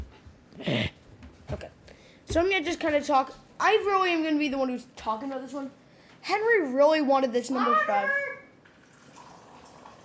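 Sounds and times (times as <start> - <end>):
speech: 2.3 - 8.2
water pouring into a glass: 8.8 - 10.0.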